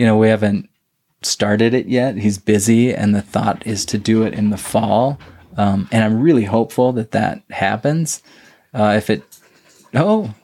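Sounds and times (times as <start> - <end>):
speech: 0.0 - 9.3, 9.9 - 10.4
dog panting softly: 2.8 - 6.9, 8.8 - 10.4.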